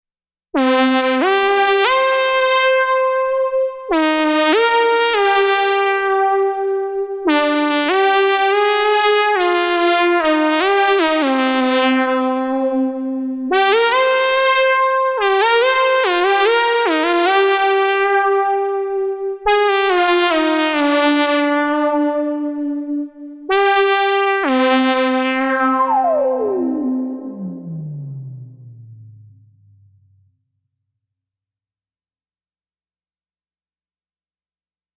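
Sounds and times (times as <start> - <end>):
phase folded synthesizer lead with stereo spring reverb: 0.6 - 30.6.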